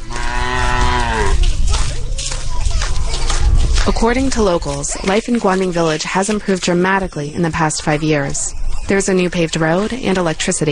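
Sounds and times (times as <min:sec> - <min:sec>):
water buffalo mooing on Hainan: 0:00.0 - 0:01.5
steady outdoor noise: 0:00.0 - 0:10.7
speech: 0:03.9 - 0:10.7.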